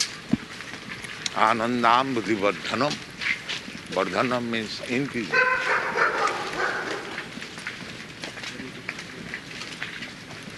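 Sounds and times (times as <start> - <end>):
steady hiss of outdoor noise: 0.0 - 10.5
speech: 1.4 - 3.1, 3.9 - 6.0
stray dogs barking: 5.2 - 7.4.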